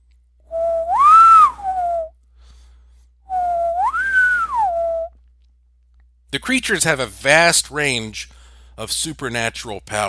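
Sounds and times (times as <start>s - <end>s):
clear high-pitched low-high-low whistles: 0.5s - 2.2s, 3.3s - 5.2s
speech: 6.4s - 10.0s.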